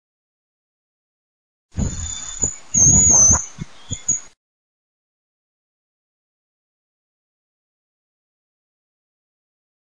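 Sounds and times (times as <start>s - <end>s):
francolin calling: 1.8s - 4.3s.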